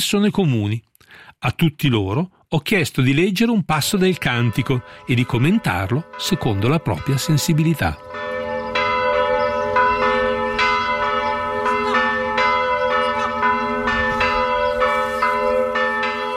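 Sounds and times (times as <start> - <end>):
speech: 0.0 - 8.5
festive church bells of a twelfth-century Romanesque church in Casentino ringing: 3.7 - 16.3.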